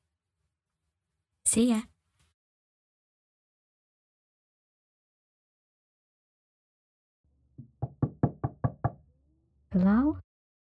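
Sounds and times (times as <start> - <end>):
speech: 1.5 - 1.9, 9.8 - 10.2
knocking on a door: 7.6 - 9.0.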